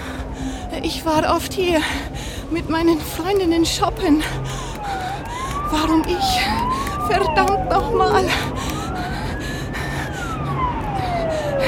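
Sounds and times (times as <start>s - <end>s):
ambulance siren wailing as the vehicle speeds past: 0.0s - 11.6s
steady traffic rumble: 0.0s - 11.6s
speech: 0.8s - 4.7s, 5.7s - 8.6s.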